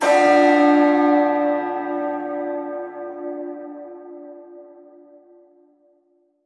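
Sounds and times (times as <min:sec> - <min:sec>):
ambient bells being hit: 0:00.0 - 0:03.4.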